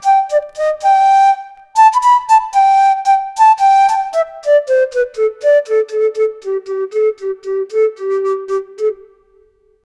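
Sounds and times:
Indian flute melody: 0.0s - 9.8s.

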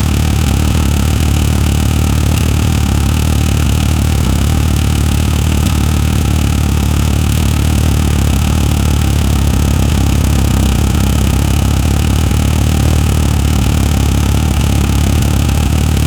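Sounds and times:
rally car engine idling at 3k: 0.0s - 16.0s.

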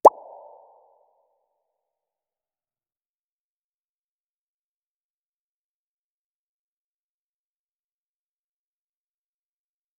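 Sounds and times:
sweet cute bubble pop: 0.0s - 0.7s.

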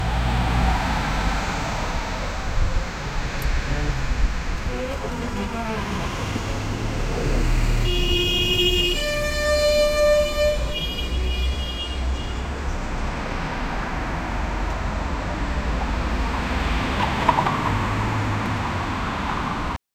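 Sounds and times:
pedestrian street sounds in a city: 0.0s - 19.8s.

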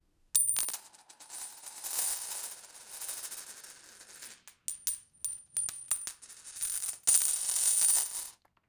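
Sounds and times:
loose coin in a bag: 0.4s - 8.4s.

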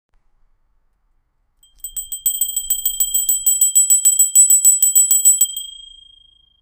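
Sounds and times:
bell ringing: 1.6s - 6.6s.

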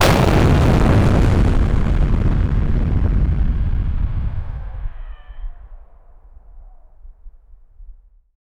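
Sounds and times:
explosion near a skyscraper: 0.0s - 6.2s.

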